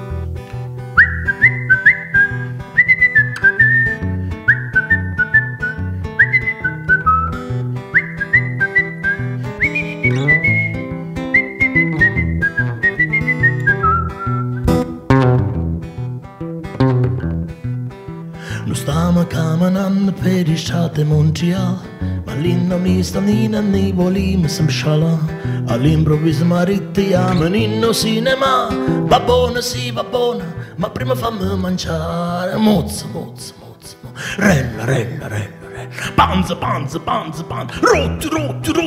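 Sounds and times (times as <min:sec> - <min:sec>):
steady instrumental backing music: 0:00.0 - 0:32.6
clear bright human whistled melody: 0:00.9 - 0:14.9
speech: 0:20.7 - 0:33.6, 0:34.4 - 0:35.5, 0:36.2 - 0:38.8.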